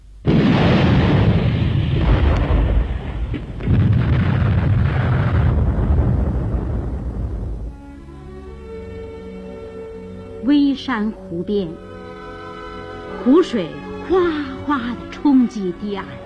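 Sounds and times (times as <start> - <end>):
artillery shells exploding on an empty position: 0.2 - 7.8
speech: 10.9 - 11.8, 13.2 - 16.2.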